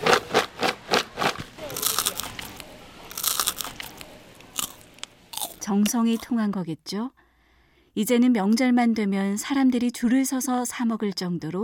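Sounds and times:
glutinous rice gangjeong being mixed by hand in a confectionery workshop: 0.0s - 6.4s
speech: 5.7s - 7.2s, 8.0s - 11.6s.

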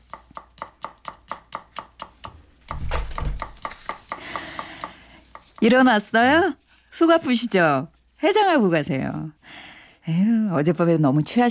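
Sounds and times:
knife chopping on a cutting board: 0.0s - 5.8s
speech: 5.6s - 9.4s, 10.1s - 11.4s.

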